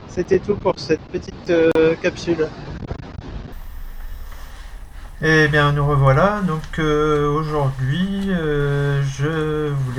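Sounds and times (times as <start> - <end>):
speech: 0.1 - 2.7, 5.2 - 9.9
steady outdoor wind buffeting the microphone: 3.5 - 9.9
sea waves: 3.6 - 9.9.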